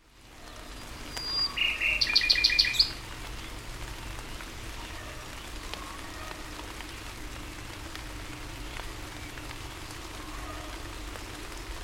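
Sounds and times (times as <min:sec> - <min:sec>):
faint steady background hiss: 0:00.0 - 0:11.8
common nightingale song: 0:00.4 - 0:03.6.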